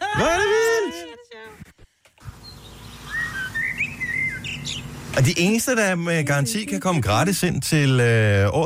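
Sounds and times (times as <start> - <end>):
speech: 0.2 - 0.5, 5.2 - 8.6
blackbird singing fluting whistled phrases: 2.3 - 5.0.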